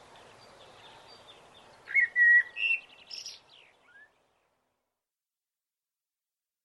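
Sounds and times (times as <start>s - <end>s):
blackbird singing flute-like whistles: 0.6s - 4.2s.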